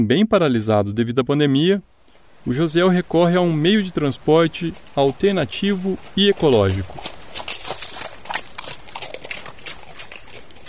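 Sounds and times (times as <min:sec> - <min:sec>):
speech: 0:00.0 - 0:07.2
horse hooves clip-clopping on a road: 0:02.1 - 0:10.6.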